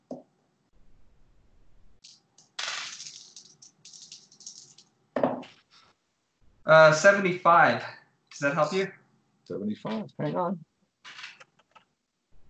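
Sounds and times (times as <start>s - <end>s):
D100 dice clattering as rolled: 2.0s - 4.9s
speech: 6.7s - 10.7s.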